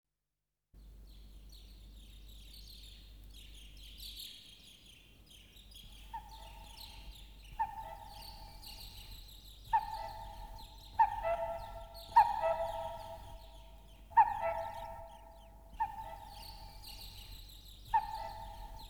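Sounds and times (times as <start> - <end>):
bird harsh nasal honking calls: 6.1 - 9.1, 9.7 - 17.3, 17.9 - 18.8.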